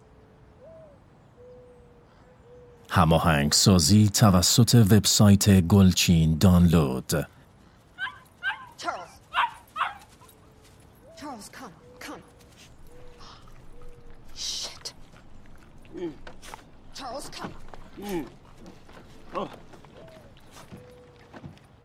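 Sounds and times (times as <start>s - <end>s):
speech: 2.9s - 7.4s
dog barking and yipping: 8.0s - 10.4s.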